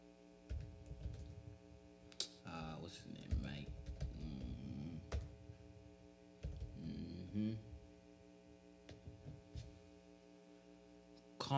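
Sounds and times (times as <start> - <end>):
steady low electrical hum: 0.0 - 11.5
soft quick clicks of typing on a computer keyboard: 0.5 - 1.4, 3.2 - 5.3, 6.4 - 6.8
speech: 2.9 - 3.9, 7.3 - 7.7.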